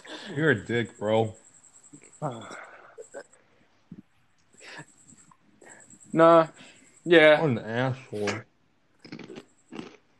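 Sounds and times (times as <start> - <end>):
speech: 0.3 - 1.4, 2.2 - 2.6, 6.1 - 8.5
chewing crunchy chicharrones: 9.0 - 10.0.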